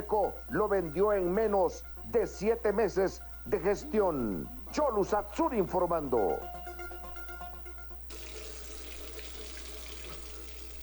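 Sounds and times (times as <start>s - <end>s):
speech: 0.1s - 6.6s
water gushing from an open tap: 8.1s - 10.8s.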